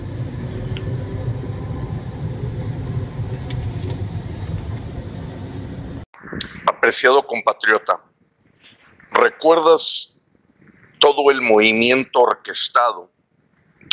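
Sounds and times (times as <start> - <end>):
buses idling and passing: 0.0 - 6.0
street traffic rumble on an avenue: 0.0 - 6.1
speech: 6.9 - 8.1, 9.2 - 10.1, 11.0 - 13.1.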